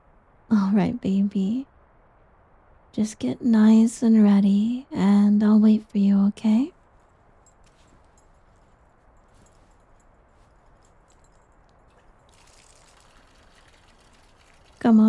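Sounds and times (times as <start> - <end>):
speech: 0.7 - 1.7, 2.9 - 6.8, 14.8 - 15.0
warm water running into a bathtub: 11.9 - 15.0.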